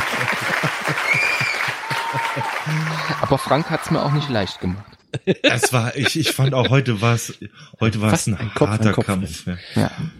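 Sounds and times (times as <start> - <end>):
applause for a quiz winner: 0.0 - 5.0
laughter: 0.0 - 9.4
speech: 2.7 - 10.1.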